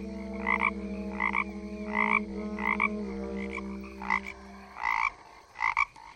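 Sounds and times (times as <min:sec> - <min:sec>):
low sustained drone: 0:00.0 - 0:05.4
toad croaking in dense forest: 0:00.0 - 0:06.1.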